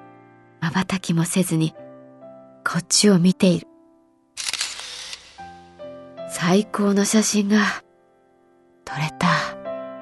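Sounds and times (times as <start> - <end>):
speech: 0.7 - 1.8, 2.7 - 3.7, 6.4 - 7.8, 8.9 - 9.2
single-lens reflex camera shutter clicks: 4.4 - 5.6.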